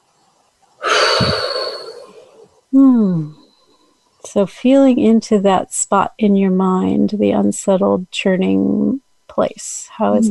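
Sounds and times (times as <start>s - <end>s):
person yawning: 0.8s - 3.3s
speech: 4.4s - 10.2s.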